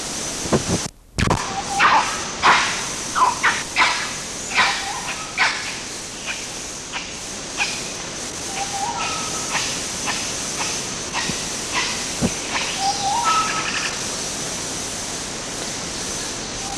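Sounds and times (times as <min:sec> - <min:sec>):
forest hiss: 0:00.0 - 0:16.7
red colobus monkey barks: 0:01.4 - 0:07.9, 0:08.5 - 0:13.9.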